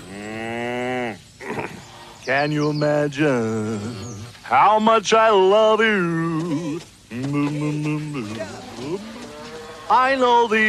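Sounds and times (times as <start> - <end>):
cow mooing in a commercial jingle: 0.0 - 1.2, 8.2 - 10.2
speech: 2.3 - 6.6, 9.9 - 10.6.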